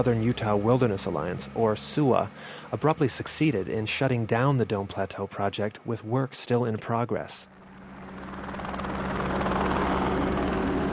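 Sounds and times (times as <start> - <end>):
helicopter engine drone: 0.0 - 6.1, 7.2 - 10.9
speech: 0.0 - 7.6
helicopter rotor thrum ferrying equipment out of a plateau work site in southern Utah: 7.5 - 10.9.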